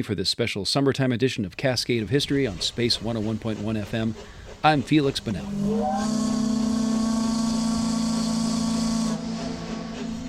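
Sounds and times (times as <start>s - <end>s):
speech: 0.0s - 6.6s
steam whistle of a steamer blowing: 5.1s - 10.2s.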